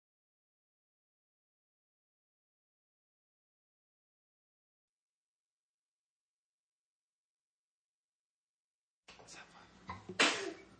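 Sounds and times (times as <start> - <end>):
person sneezing: 10.2 - 10.7.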